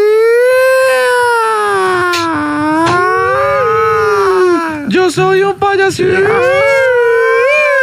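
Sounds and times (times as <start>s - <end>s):
person imitating an ambulance siren with a sung voice: 0.0s - 4.9s, 6.1s - 7.8s.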